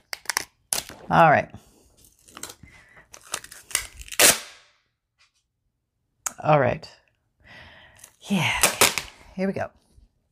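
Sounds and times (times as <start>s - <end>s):
strong Tyvek tape being torn: 0.0s - 1.1s, 2.2s - 4.8s, 8.6s - 9.2s
speech: 1.1s - 1.6s, 6.4s - 7.0s, 8.3s - 8.7s, 9.4s - 9.8s.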